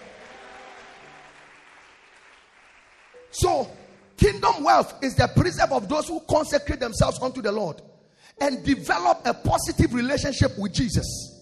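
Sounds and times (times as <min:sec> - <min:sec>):
audience clapping during a sermon: 0:00.0 - 0:04.2
speech: 0:03.3 - 0:11.3.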